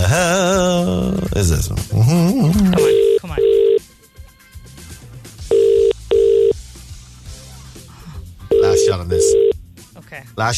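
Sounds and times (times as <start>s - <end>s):
faint music: 0.0s - 10.5s
speech: 1.4s - 2.8s, 10.4s - 10.5s
telephone line double ringing tone on an outgoing call: 2.8s - 3.8s, 5.5s - 6.6s, 8.5s - 9.6s.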